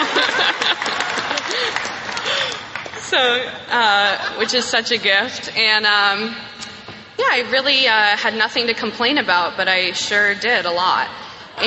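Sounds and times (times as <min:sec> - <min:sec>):
audience clapping: 0:00.0 - 0:03.6
laughter: 0:00.0 - 0:05.3
speech: 0:03.1 - 0:06.6, 0:07.2 - 0:11.2.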